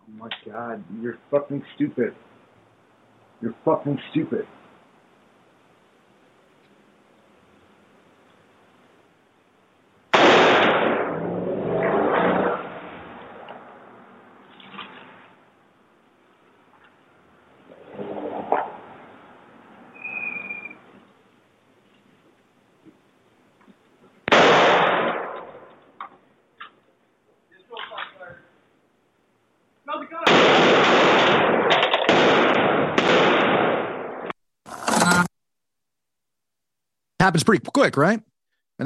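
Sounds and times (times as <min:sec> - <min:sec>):
speech: 0:00.2 - 0:02.3, 0:03.4 - 0:04.6, 0:37.3 - 0:38.8
gunfire recorded by a doorbell camera: 0:10.1 - 0:12.8, 0:24.3 - 0:25.7, 0:30.2 - 0:34.3.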